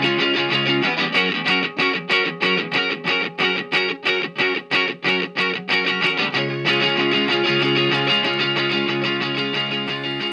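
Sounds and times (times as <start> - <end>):
electric lead guitar playing sustained ringing notes with reverb: 0.0 - 10.3.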